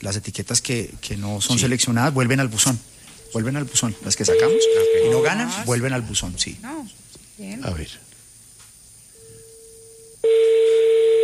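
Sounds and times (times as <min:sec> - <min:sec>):
speech: 0:00.0 - 0:08.1
faint steady electronic telephone tone: 0:03.2 - 0:05.4, 0:09.1 - 0:11.2.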